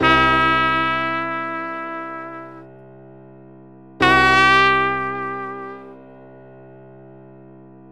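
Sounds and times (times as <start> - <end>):
blue notes C7 chord: 0.0 - 2.8, 4.0 - 6.1.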